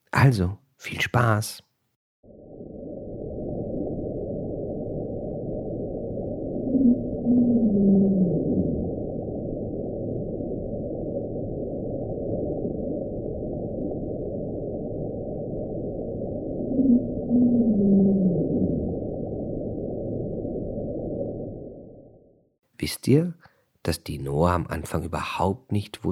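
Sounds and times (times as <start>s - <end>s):
speech: 0.1s - 1.7s, 6.8s - 8.2s, 22.8s - 26.1s
steady low underwater drone: 2.3s - 22.2s
underwater rumble of small icebergs breaking apart in the ocean: 2.3s - 22.5s.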